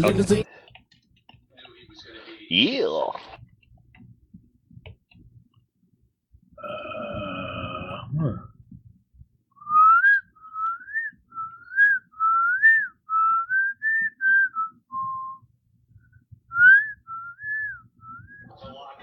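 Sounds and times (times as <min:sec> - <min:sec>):
speech: 0:00.0 - 0:00.7, 0:02.5 - 0:03.3
person whistling a lively little melody: 0:09.6 - 0:15.5, 0:16.5 - 0:18.5.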